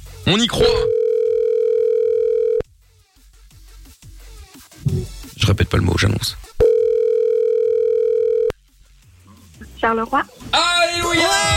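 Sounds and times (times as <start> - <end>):
speech: 0.2 - 1.0, 5.8 - 6.5, 9.8 - 11.5
telephone ringing tone heard by a caller waiting for an answer: 0.7 - 2.6, 6.6 - 8.5.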